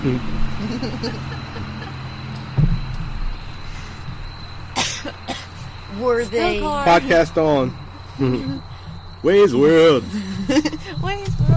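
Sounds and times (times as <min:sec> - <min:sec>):
speech: 0:00.0 - 0:01.8, 0:05.9 - 0:11.3
laughter: 0:00.0 - 0:02.5, 0:06.8 - 0:08.7, 0:09.7 - 0:11.0
faint high whine: 0:00.0 - 0:11.5
passing car engine humming: 0:00.0 - 0:11.5
cough-like burst: 0:04.8 - 0:05.6.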